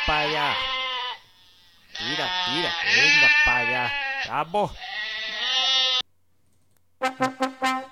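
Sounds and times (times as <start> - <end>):
Zaraibi goats bleating: 0.0 - 6.1
speech: 0.1 - 0.8, 2.0 - 5.6, 7.0 - 7.6.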